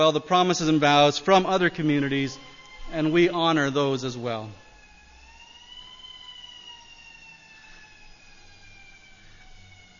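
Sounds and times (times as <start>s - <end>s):
speech: 0.0s - 4.6s
siren wailing outside: 0.0s - 9.9s.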